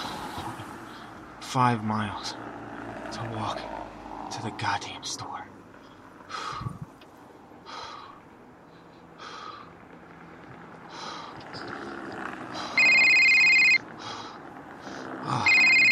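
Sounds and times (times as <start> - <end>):
speech: 1.5 - 2.4, 3.1 - 5.4
telephone ringing in electronic bursts: 12.8 - 13.8, 15.4 - 15.9.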